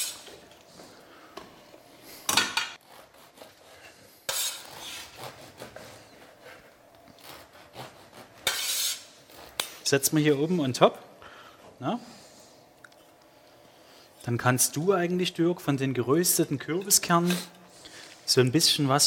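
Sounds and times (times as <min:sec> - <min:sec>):
knife sawing through bread in a kitchen: 0:02.8 - 0:09.6
speech: 0:09.9 - 0:11.1, 0:11.8 - 0:12.2, 0:14.3 - 0:17.6, 0:18.3 - 0:19.0.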